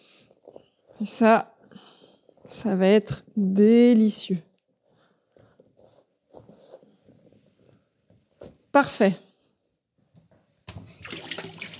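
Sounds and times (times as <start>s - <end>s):
speech: 1.0s - 1.5s, 2.6s - 4.5s, 8.8s - 9.3s
hot tap water running over hands being washed during cooking: 10.7s - 11.7s.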